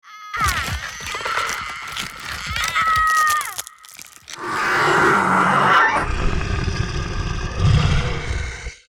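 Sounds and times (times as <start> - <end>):
female werewolf transformation: 0.4 - 8.8.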